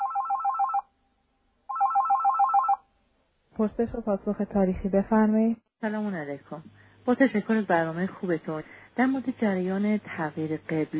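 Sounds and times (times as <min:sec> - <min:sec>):
telephone ringing for an incoming call: 0:00.0 - 0:00.9, 0:01.7 - 0:02.9
speech: 0:03.6 - 0:10.9.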